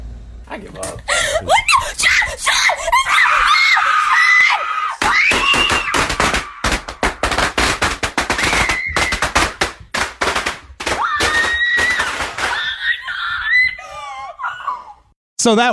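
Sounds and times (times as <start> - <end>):
speech: 0.6 - 3.0, 15.4 - 15.7
girl screaming shrilly: 1.4 - 6.8, 8.4 - 9.3, 10.9 - 15.1
string of firecrackers bursting: 5.0 - 12.8.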